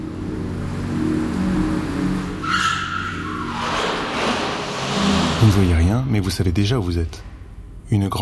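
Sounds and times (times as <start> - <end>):
car engine rumble in underground car park: 0.0 - 8.2
steady drone: 0.0 - 8.2
brief tire squeal: 0.6 - 6.1
speech: 5.4 - 7.3, 7.9 - 8.2.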